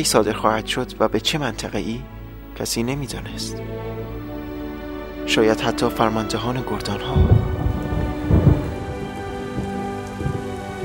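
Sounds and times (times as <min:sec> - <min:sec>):
speech: 0:00.0 - 0:03.9, 0:05.3 - 0:07.4
rain hissing: 0:03.2 - 0:10.8
deep rumble of thunder: 0:05.6 - 0:10.8.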